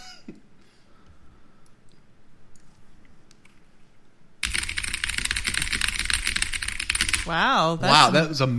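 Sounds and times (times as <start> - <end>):
typing on an extremely loud computer keyboard: 4.4 - 7.4
speech: 7.3 - 8.5.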